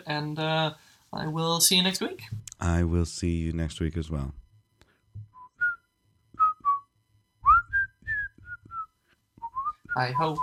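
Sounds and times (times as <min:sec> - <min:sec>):
speech: 0:00.1 - 0:04.4, 0:10.0 - 0:10.4
soft low thumps: 0:04.3 - 0:05.8, 0:07.4 - 0:10.0
person whistling a lilting tune: 0:05.3 - 0:05.8, 0:06.4 - 0:10.4.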